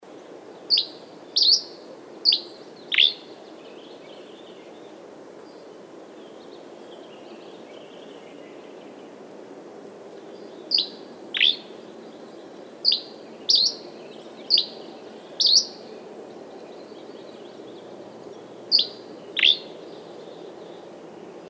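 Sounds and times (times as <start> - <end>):
Dusky Flycatcher Empidonax oberholseri: 0.7 - 3.2, 8.5 - 19.7.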